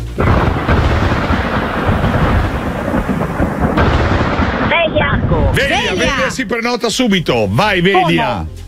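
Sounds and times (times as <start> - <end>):
thunder of a summer thunderstorm: 0.0 - 6.8
summer downpour: 0.0 - 7.2
speech: 6.4 - 8.6.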